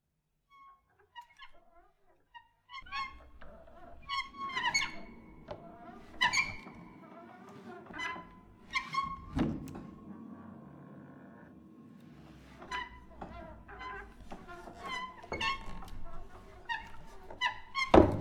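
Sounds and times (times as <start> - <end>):
squeaks from piano destruction: 2.7 - 9.8, 12.4 - 18.1.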